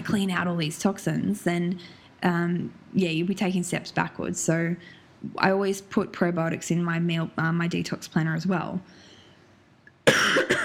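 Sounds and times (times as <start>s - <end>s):
speech: 0.1s - 9.0s
person coughing: 10.0s - 10.6s.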